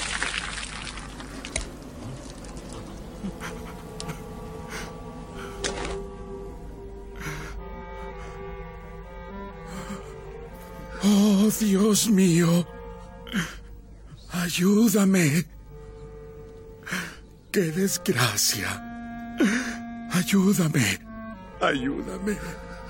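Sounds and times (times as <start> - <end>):
water pouring into a leather waterskin: 0.0 - 1.6
speech: 11.1 - 12.7, 14.6 - 15.5, 17.6 - 19.7, 20.3 - 21.0, 21.6 - 22.7.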